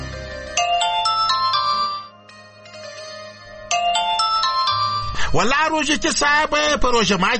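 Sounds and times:
electronic telephone ringtone of quick bright chiming notes: 0.1 - 5.2
speech: 5.4 - 7.3.

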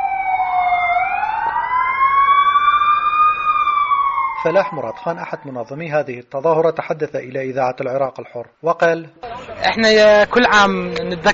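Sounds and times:
warning sirens wailing during a memorial for the bombing of Halabja: 0.0 - 5.9
speech: 4.4 - 11.3.

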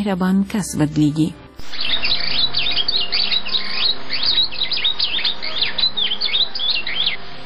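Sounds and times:
speech: 0.0 - 1.8
golden bird in a golden tree singing with chirps and trills: 1.6 - 7.4.

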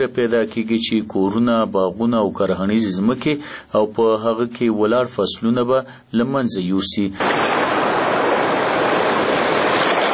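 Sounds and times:
speech: 0.0 - 7.8
rushing waves of a river swollen with rising flood water in Afghanistan: 7.6 - 10.1.

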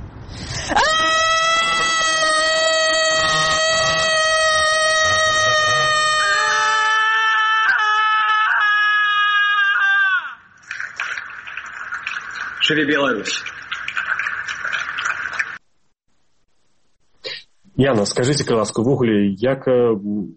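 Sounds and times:
quieter noise: 0.0 - 20.3
crowd of people screaming together in protest: 0.6 - 10.5
speech: 12.7 - 13.6, 17.8 - 20.3.

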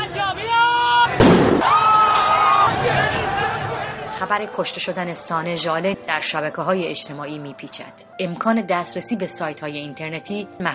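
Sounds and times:
protest crowd shouting on a street march against the government: 0.0 - 4.9
single sharp gunshot: 1.2 - 2.2
speech: 4.2 - 10.7.

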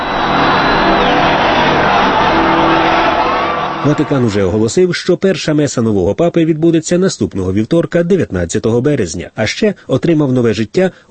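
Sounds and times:
strong wind in St. Peter's Square: 0.0 - 3.9
people shouting in a crowd: 0.0 - 4.4
large crowd cheering in St. Peter's Square at the Vatican: 0.0 - 4.7
speech: 3.8 - 11.0.

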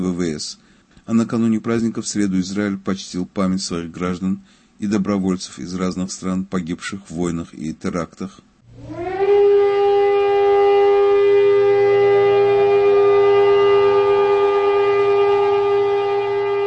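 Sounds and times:
speech: 0.1 - 9.1
low hum of traffic or wind: 8.6 - 16.6
nationwide memorial siren wailing: 8.6 - 16.6.

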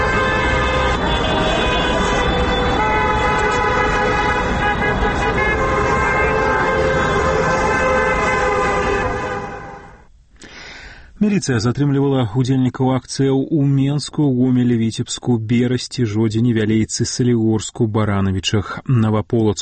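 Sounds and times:
car horns honking in support of a protest on Yakub Kolas Square: 0.0 - 10.1
traffic rumble: 0.0 - 10.1
speech: 11.3 - 19.5.

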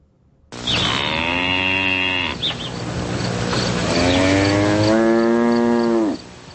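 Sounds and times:
cow mooing in a meadow: 0.6 - 2.5, 3.9 - 6.3.

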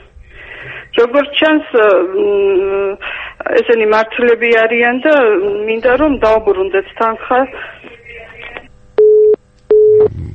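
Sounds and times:
speech: 0.6 - 7.8
telephone busy tone after a caller's line disconnected: 9.0 - 10.1.

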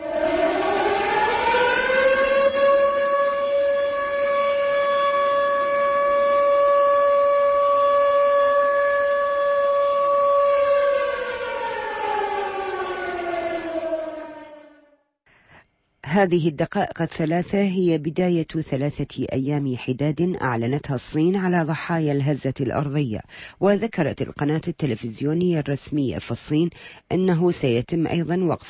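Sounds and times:
loud air raid siren wailing: 0.0 - 15.1
speech: 16.2 - 28.6.

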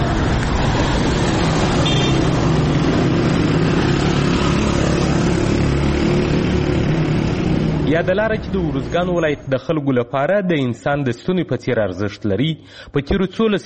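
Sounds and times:
cars and motorcycles driving on a potholed rough road: 0.0 - 9.5
speech: 7.9 - 13.6.

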